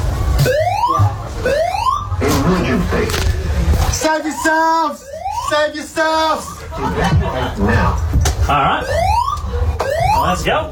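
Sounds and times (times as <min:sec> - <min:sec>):
building fire alarm evacuation siren whooping: 0:00.0 - 0:02.3, 0:04.0 - 0:06.6, 0:08.7 - 0:10.7
busy noise that may be voices: 0:00.0 - 0:10.7
speech: 0:04.2 - 0:09.2, 0:10.2 - 0:10.7
laughter: 0:06.2 - 0:08.1.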